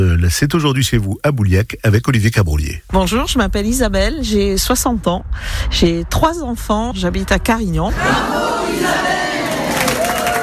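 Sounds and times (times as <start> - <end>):
speech: 0.3 - 9.3
choir group applauding and cheering at a rehearsal: 8.0 - 10.4
shouted whoops from a choir group: 9.4 - 10.4.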